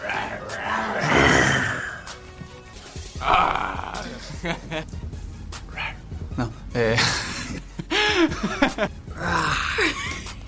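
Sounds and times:
person imitating a grizzly growl: 0.0 - 2.1, 3.2 - 4.4, 9.2 - 9.8
laughter: 3.9 - 4.9, 7.0 - 8.9, 9.7 - 10.4
speech: 4.4 - 5.1.

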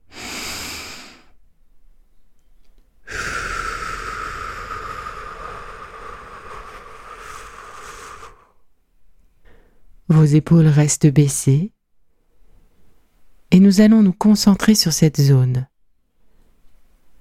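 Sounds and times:
slow abdominal breathing in through the nose and out through the mouth: 0.0 - 1.5, 2.5 - 10.0, 16.1 - 17.1
speech: 10.1 - 11.8, 13.5 - 15.7.

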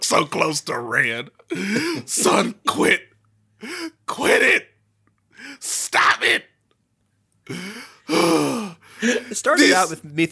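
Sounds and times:
speech: 0.1 - 4.7, 5.6 - 6.5, 7.5 - 10.3
person mimicking heavy, labored breathing: 1.5 - 2.6, 7.5 - 9.9.

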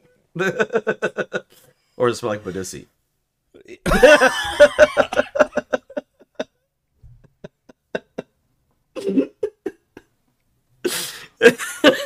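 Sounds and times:
speech: 0.4 - 1.3, 2.0 - 3.0, 3.8 - 5.0
laughter: 3.9 - 6.5, 7.2 - 8.4, 11.4 - 12.0
person choking and coughing: 9.0 - 9.8.

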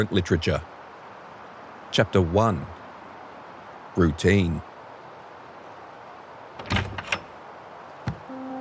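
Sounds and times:
speech: 0.0 - 0.7, 1.9 - 2.7, 4.0 - 4.7
latch-like clunk of a wooden cabin door: 6.6 - 7.3
old wooden cabin door creaking open on its hinge: 6.6 - 7.3
knocks on an old wooden cabin door: 8.0 - 8.3.

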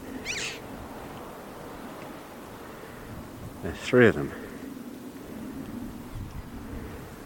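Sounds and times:
red-billed chough calling in a cow field by a calm bay: 0.0 - 0.7
steady hiss of open-air noise: 0.0 - 7.2
speech: 3.6 - 4.4.

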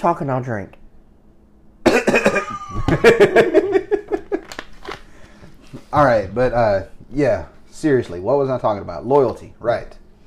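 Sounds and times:
speech: 0.0 - 0.8, 2.1 - 3.8, 5.9 - 10.0
person coughing: 1.8 - 3.2
laughter: 2.3 - 4.6.

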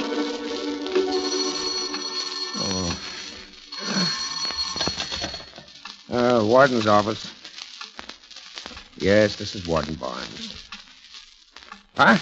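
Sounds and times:
old-fashioned telephone bell ringing in a prison warden's office: 0.1 - 5.8
speech: 6.5 - 7.4, 9.0 - 10.6, 12.0 - 12.2.

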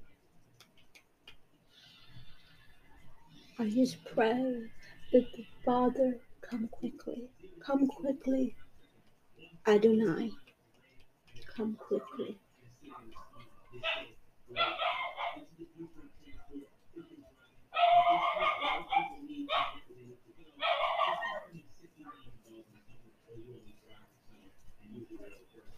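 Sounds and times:
speech: 3.6 - 8.6, 9.4 - 10.4, 11.6 - 16.7
several dogs barking outdoors: 13.0 - 15.5, 17.7 - 19.9, 20.6 - 21.5.

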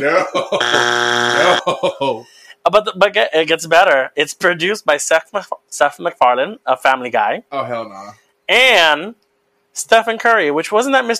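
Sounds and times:
laughter: 0.0 - 2.2
speech: 0.0 - 9.2, 9.8 - 11.1
loud steady harsh buzzer tone: 0.6 - 1.7.

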